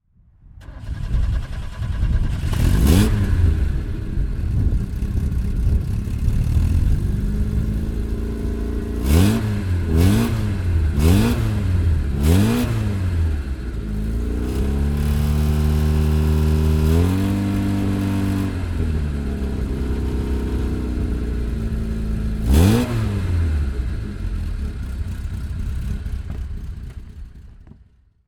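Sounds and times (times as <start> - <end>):
Fiat 128 Sport 1300 SL coupe engine: 0.6 - 27.9.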